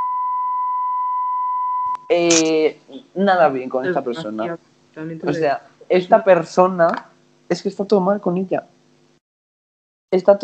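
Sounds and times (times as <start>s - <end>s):
high pure censor beep tone: 0.0s - 2.5s
speech: 2.1s - 8.7s, 10.1s - 10.4s.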